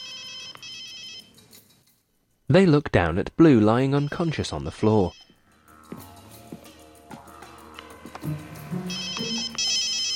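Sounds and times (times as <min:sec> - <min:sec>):
phone ringing with a bright electronic ringtone: 0:00.0 - 0:01.4, 0:03.9 - 0:05.4, 0:08.7 - 0:10.1
speech: 0:02.5 - 0:05.2
soft telephone dialing tones and clicks: 0:07.8 - 0:10.1.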